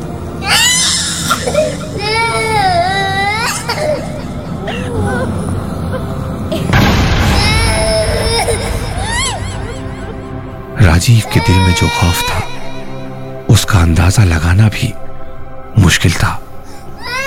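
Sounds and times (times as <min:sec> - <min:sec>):
baby crying loudly in wailing bursts: 0:00.4 - 0:06.1, 0:07.2 - 0:10.2, 0:11.2 - 0:12.8, 0:17.0 - 0:17.2
speech: 0:11.0 - 0:12.5, 0:13.7 - 0:15.1, 0:15.9 - 0:16.4.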